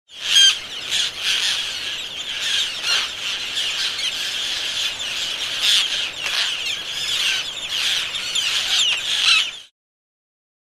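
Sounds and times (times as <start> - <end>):
Roseate tern calling: 0.1 - 9.7.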